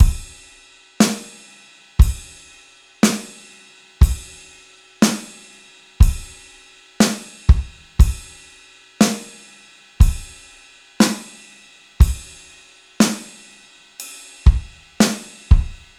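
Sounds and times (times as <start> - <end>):
rock drum loop: 0.0 - 2.4, 3.0 - 3.4, 4.0 - 4.4, 5.0 - 5.4, 6.0 - 6.4, 7.0 - 8.4, 9.0 - 9.4, 10.0 - 10.4, 11.0 - 11.4, 12.0 - 12.4, 13.0 - 13.4, 14.5 - 15.9.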